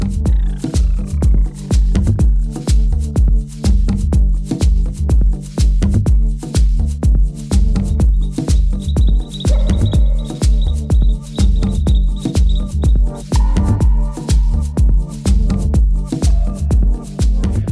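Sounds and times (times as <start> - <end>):
music track made with recorded songs of endangered bird species: 0.0 - 17.7
bird-song-like chirps and whistles: 8.0 - 13.8.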